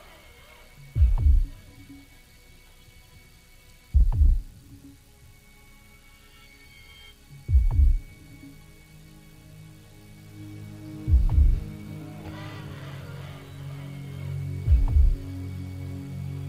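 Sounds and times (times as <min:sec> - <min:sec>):
faint low hum: 0:00.0 - 0:16.4
deep heartbeat thudding: 0:01.0 - 0:01.7, 0:04.0 - 0:04.6, 0:07.5 - 0:08.2, 0:11.1 - 0:11.8, 0:14.7 - 0:15.3.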